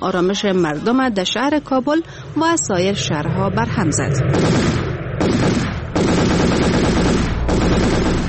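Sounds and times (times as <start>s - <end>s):
speech: 0.0s - 6.1s
celebratory machine gun fire by young people celebrating a cricket victory: 4.3s - 8.2s.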